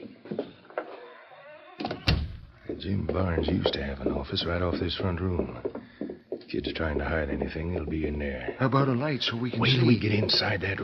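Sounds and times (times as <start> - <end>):
unlocked door creaking and rattling open: 1.0 - 2.7
speech: 2.7 - 5.8, 6.5 - 10.8.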